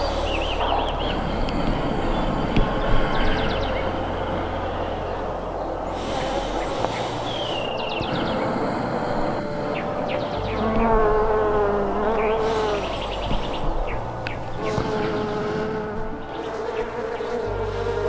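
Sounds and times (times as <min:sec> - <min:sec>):
many bees buzzing at a beehive: 0:00.0 - 0:18.0.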